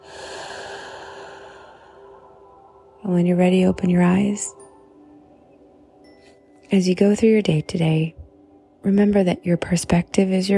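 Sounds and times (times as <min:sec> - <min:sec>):
deep breath exhaled during a guided relaxation exercise: 0:00.0 - 0:02.4
speech: 0:03.0 - 0:04.6, 0:06.7 - 0:08.2, 0:08.8 - 0:10.5.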